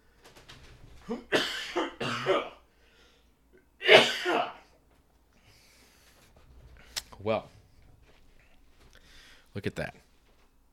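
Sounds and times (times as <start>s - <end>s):
speech: 1.1s - 1.4s, 7.3s - 7.6s, 9.6s - 10.0s
person clearing throat: 1.1s - 2.6s, 3.8s - 4.7s
person coughing: 1.1s - 2.6s, 3.8s - 4.8s.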